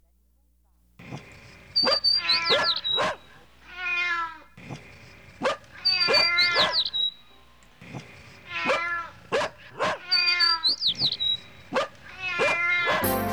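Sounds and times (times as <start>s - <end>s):
dog barking: 1.0s - 3.6s, 4.6s - 7.2s, 7.8s - 13.2s
cat meowing: 1.9s - 4.6s, 5.7s - 7.2s, 7.9s - 11.5s, 12.1s - 13.1s.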